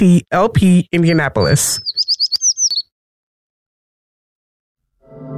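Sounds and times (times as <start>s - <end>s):
speech: 0.0s - 2.2s
American Tree Sparrow song: 1.0s - 2.9s.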